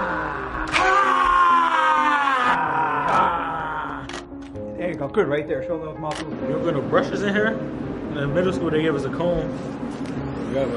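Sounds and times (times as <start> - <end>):
person yelling during a game-day photo shoot: 0.0 - 4.1
speech: 5.0 - 10.7.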